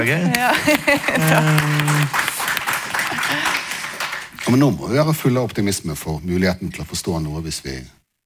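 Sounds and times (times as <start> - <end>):
speech: 0.0 - 2.3, 3.3 - 3.6, 4.4 - 8.0
small crowd applauding: 0.0 - 5.5
laughter: 0.2 - 4.0.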